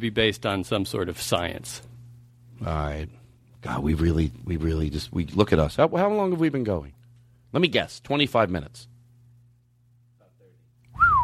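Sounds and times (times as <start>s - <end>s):
speech: 0.0s - 1.9s, 2.6s - 8.9s
faint low hum: 0.0s - 11.2s
person whistling into the microphone: 10.9s - 11.2s.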